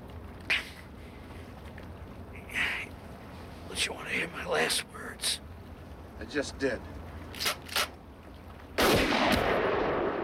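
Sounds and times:
speech: 3.8 - 5.4, 6.2 - 7.6
rifle shot with long rumbling tail: 8.8 - 10.2.

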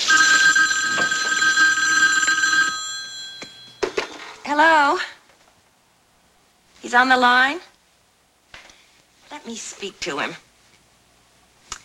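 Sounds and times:
bathroom telephone ringing with a buzzing trill: 0.0 - 4.6
speech: 4.5 - 5.2, 6.8 - 7.7, 9.3 - 10.4.

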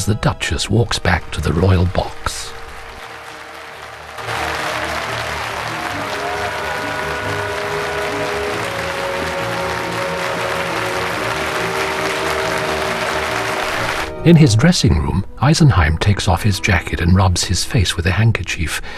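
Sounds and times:
speech: 0.0 - 2.6, 14.2 - 18.9
theatre audience standing and applauding: 0.7 - 14.2.

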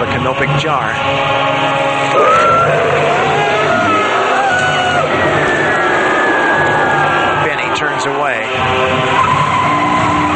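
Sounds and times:
speech: 0.2 - 2.4
car tires skidding toward a water trough: 2.1 - 10.3.

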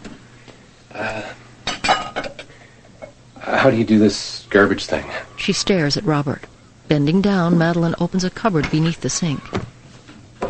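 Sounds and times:
speech: 0.9 - 1.4, 3.6 - 9.7
ceramic dishes clattering as they are set down in a sink: 1.6 - 3.2.

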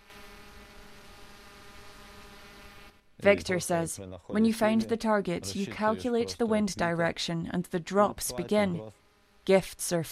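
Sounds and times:
military drone rotor buzzing over a wintry landscape: 0.0 - 3.1
speech: 3.2 - 10.1.

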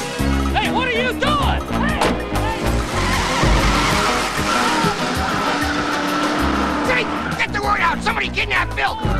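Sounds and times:
car tires squealing and skidding: 0.0 - 9.1
stolen car engine roaring at high speed: 0.0 - 9.1.

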